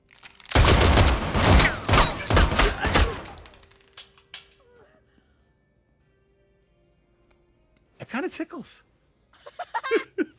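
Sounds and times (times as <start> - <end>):
rapid gunfire aimed at a man in a suit: 0.6 - 3.4
speech: 8.2 - 8.9
laughter: 9.4 - 10.3.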